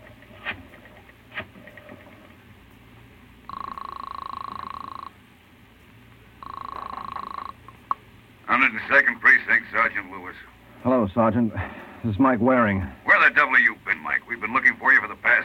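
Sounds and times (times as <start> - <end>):
long steady telephone buzzing ring tones: 3.4 - 5.2, 6.4 - 8.0
telephone being dialed with sharp clicks: 6.4 - 7.5
speech: 8.6 - 15.4.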